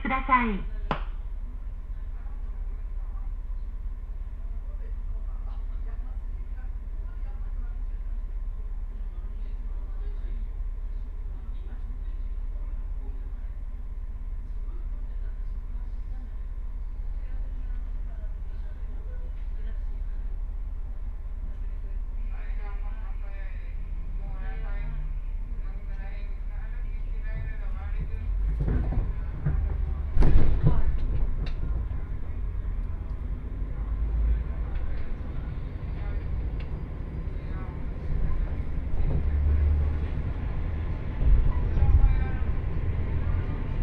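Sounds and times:
small local train rumbling, heard onboard: 0:00.0 - 0:43.8
speech: 0:00.1 - 0:00.8
faint rattles and creaks inside a train carriage: 0:24.6 - 0:43.8.

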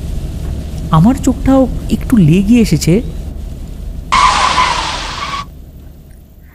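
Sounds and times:
speech: 0:00.9 - 0:03.2
speeding truck braking hard with tires screeching on an empty road: 0:04.1 - 0:05.5.

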